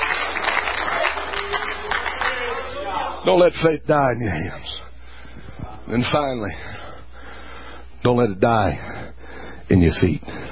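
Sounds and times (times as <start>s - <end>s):
audience clapping hands: 0.0s - 3.2s
speech: 3.2s - 4.9s, 5.9s - 6.8s, 8.0s - 9.1s, 9.7s - 10.4s.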